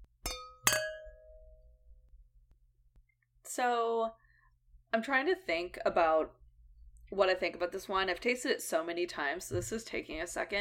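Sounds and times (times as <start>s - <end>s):
wine glasses clinking in a toast: 0.3s - 1.4s
speech: 3.6s - 4.2s, 4.9s - 6.4s, 7.1s - 10.5s.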